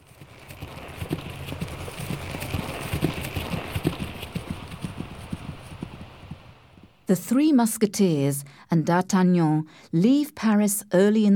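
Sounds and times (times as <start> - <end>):
horses' hooves clip-clopping on a hard road: 0.0 - 7.0
speech: 7.1 - 11.3.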